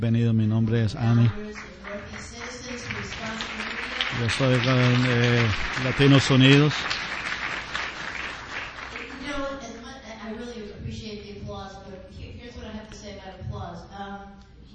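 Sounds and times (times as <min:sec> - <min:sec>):
speech: 0:00.0 - 0:07.0
audience applause: 0:01.7 - 0:09.5.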